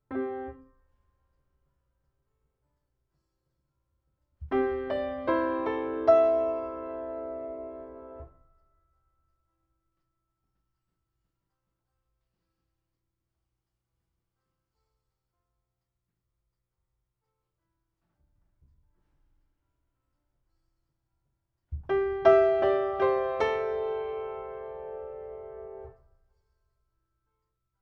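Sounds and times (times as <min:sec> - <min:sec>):
piano: 0:00.0 - 0:00.9, 0:04.4 - 0:08.5, 0:21.8 - 0:26.1.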